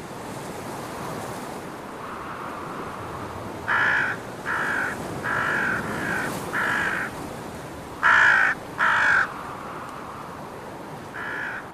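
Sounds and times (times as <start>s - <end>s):
smaller birds cawing harshly while mobbing a flying eagle: 3.6s - 7.2s, 8.0s - 9.9s, 11.1s - 11.7s.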